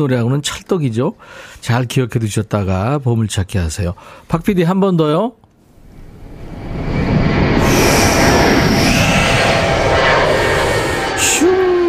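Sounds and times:
speech: 0.0s - 5.4s
jet airplane taking off: 5.7s - 11.8s.

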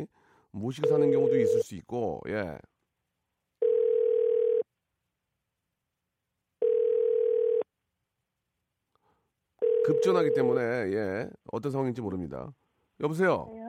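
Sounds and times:
speech: 0.0s - 2.7s, 9.8s - 13.6s
telephone ringback tone of an outgoing call: 0.8s - 1.6s, 3.6s - 4.6s, 6.6s - 7.6s, 9.6s - 10.5s.

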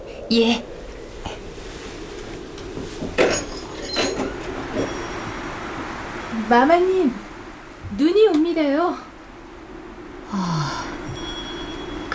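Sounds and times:
hiss: 0.0s - 12.1s
speech: 0.3s - 0.7s, 6.5s - 7.2s
sliding door scraping and creaking open: 1.5s - 6.5s.

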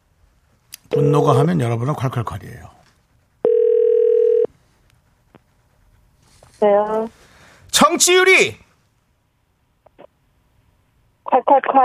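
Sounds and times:
steady telephone dial tone: 0.9s - 1.3s, 3.4s - 4.5s
speech: 1.0s - 2.8s, 6.6s - 8.6s, 11.4s - 11.8s.

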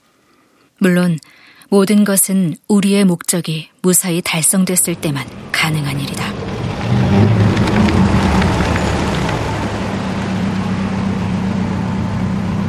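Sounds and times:
speech: 0.8s - 6.4s
black minibus engine driving up at night: 4.6s - 12.6s.

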